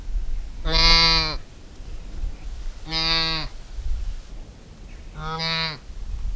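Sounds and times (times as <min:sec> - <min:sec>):
juvenile Saiga tatarica calling: 0:00.6 - 0:01.4, 0:02.4 - 0:03.6, 0:04.9 - 0:05.9.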